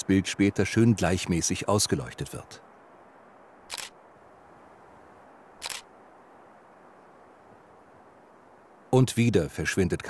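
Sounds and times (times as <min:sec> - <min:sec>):
faint hiss: 0:00.0 - 0:10.0
speech: 0:00.1 - 0:02.7, 0:08.9 - 0:10.0
crisp shutter clicks from a remote-controlled camera photographing an owl: 0:03.7 - 0:04.0, 0:05.6 - 0:05.9.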